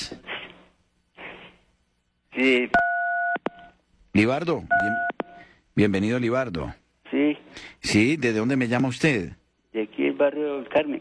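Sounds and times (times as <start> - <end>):
speech: 2.4 - 2.9, 4.2 - 5.2, 5.8 - 9.4, 10.2 - 10.9
steady two-pitch telephone tone as a call is redialed: 2.8 - 3.8, 4.7 - 5.5.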